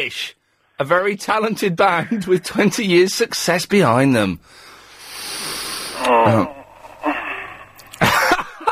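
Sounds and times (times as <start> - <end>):
speech: 0.0 - 4.6, 6.0 - 6.6
soft breathy exhalations: 4.4 - 8.0
long breathy inhale into a groaning voiced yawn: 5.8 - 7.8.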